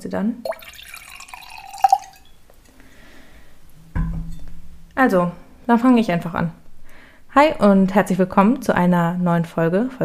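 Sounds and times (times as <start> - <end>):
speech: 0.0 - 0.7, 5.0 - 6.6, 7.3 - 10.0
glass clinking: 0.5 - 2.4
wine trickling and dripping into a glass: 0.5 - 2.4.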